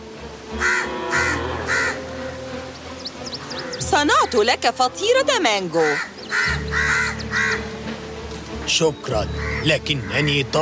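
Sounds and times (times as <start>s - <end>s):
crows cawing: 0.6s - 2.4s, 3.5s - 4.6s, 5.8s - 7.9s, 9.3s - 10.3s
small birds chirping: 2.1s - 10.6s
speech: 4.0s - 6.2s, 8.7s - 10.6s.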